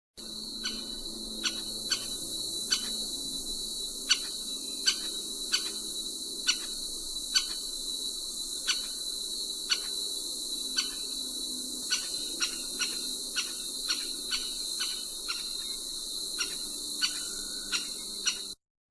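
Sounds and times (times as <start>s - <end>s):
Melanerpes aurifrons woodpecker: 0.6s - 3.1s, 4.0s - 7.7s, 8.6s - 9.0s, 9.6s - 10.0s, 10.7s - 11.2s, 11.8s - 18.6s.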